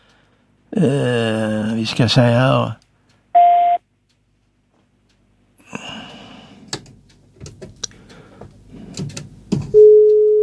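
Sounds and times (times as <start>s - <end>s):
speech: 0.8s - 2.8s
short electronic telephone tone: 3.4s - 3.8s, 9.8s - 10.4s.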